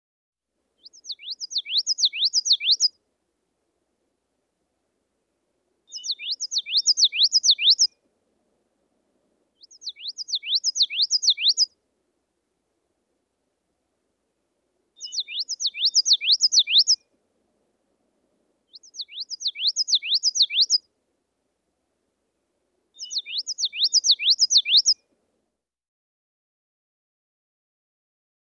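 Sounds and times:
reed warbler: 5.9s - 7.9s, 9.6s - 11.7s, 15.0s - 17.0s, 18.7s - 20.8s, 23.0s - 25.0s.

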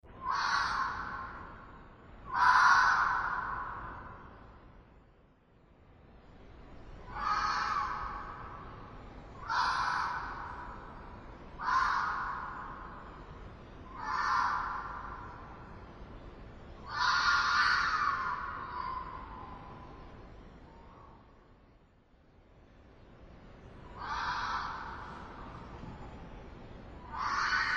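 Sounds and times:
fox: 0.0s - 4.6s, 6.9s - 16.1s, 16.7s - 21.5s, 23.5s - 27.7s.

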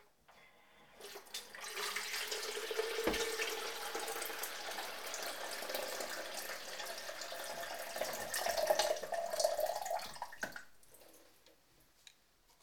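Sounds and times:
electric kettle boiling: 0.7s - 10.7s.

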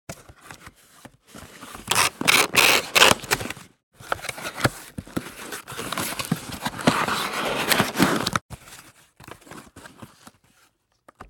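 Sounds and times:
box being unpacked: 0.1s - 10.8s.

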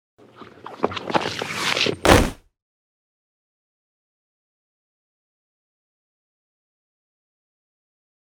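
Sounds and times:
person slipping: 0.2s - 2.4s.

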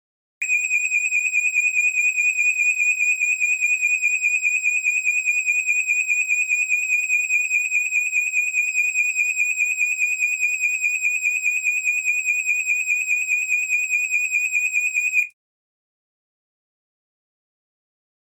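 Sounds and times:
fire alarm: 0.4s - 15.4s.

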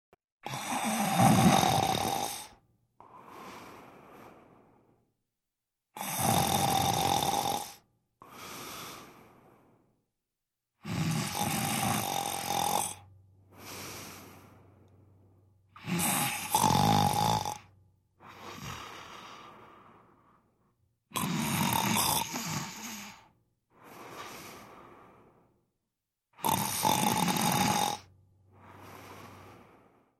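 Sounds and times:
snoring: 0.4s - 4.9s, 6.0s - 9.7s, 10.8s - 15.0s, 15.7s - 20.4s, 21.1s - 25.5s, 26.4s - 30.1s.

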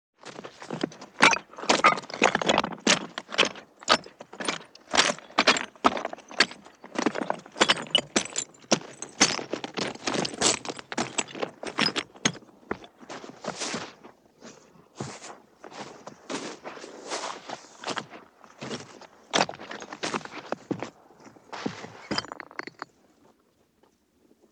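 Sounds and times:
footsteps walking on stones and ruins: 0.3s - 22.9s.

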